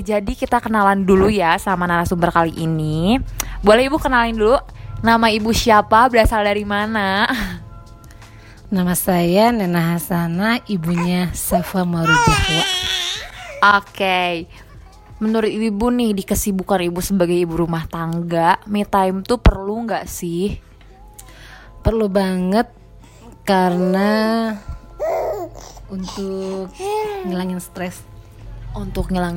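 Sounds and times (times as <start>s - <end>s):
speech: 0.0s - 7.6s, 8.7s - 12.9s, 13.6s - 14.6s, 15.2s - 20.7s, 21.8s - 22.8s, 23.5s - 28.1s, 28.7s - 29.3s
baby crying in a high wavering wail: 12.0s - 13.7s, 24.9s - 27.4s.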